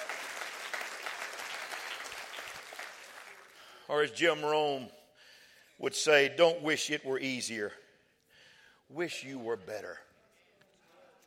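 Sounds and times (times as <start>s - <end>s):
crowd clapping: 0.0s - 3.7s
speech: 3.9s - 5.0s, 5.8s - 7.8s, 8.9s - 10.1s.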